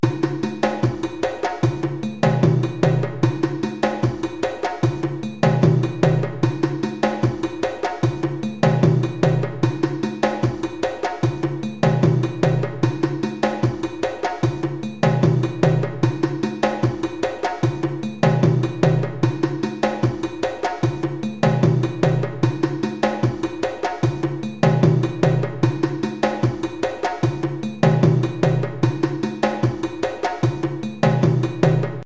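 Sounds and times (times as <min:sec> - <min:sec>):
rumba groove on djembe: 0:00.0 - 0:32.0.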